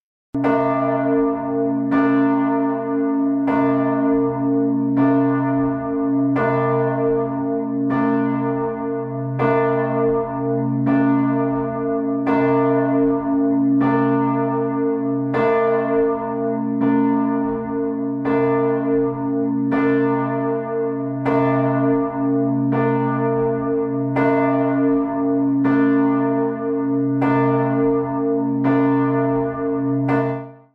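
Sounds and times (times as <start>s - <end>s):
large deep cathedral church bell tolling: 0.4s - 30.7s.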